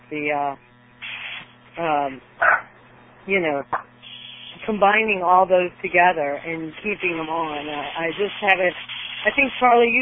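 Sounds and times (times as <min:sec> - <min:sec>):
speech: 0:00.1 - 0:00.7, 0:01.8 - 0:02.6, 0:03.2 - 0:03.9, 0:04.7 - 0:10.0
dog barking at another dog: 0:02.4 - 0:02.7.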